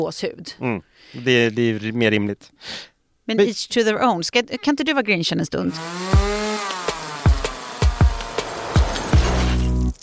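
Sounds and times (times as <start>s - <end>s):
speech: 0.0s - 6.2s
chainsaw engine whining and revving: 5.7s - 9.9s
sharp cracking hits: 5.8s - 10.0s.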